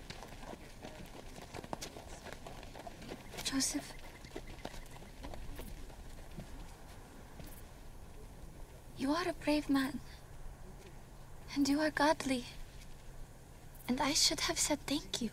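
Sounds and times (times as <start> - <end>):
donkey hooves clip-clopping while walking with a rider: 0.0 - 9.0
speech: 3.5 - 4.0, 9.0 - 10.2, 11.6 - 12.6, 13.9 - 15.3.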